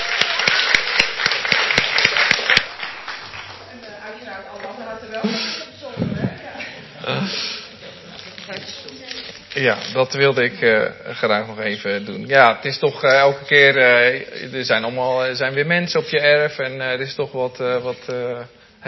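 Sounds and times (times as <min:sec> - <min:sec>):
audience applause: 0:00.0 - 0:03.8
speech: 0:09.6 - 0:18.8.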